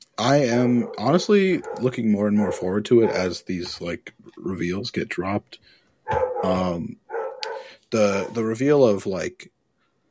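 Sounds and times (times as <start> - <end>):
speech: 0.2 - 7.0, 7.6 - 9.6
dog barking in drawn-out howling bursts: 0.8 - 3.3, 6.1 - 7.8.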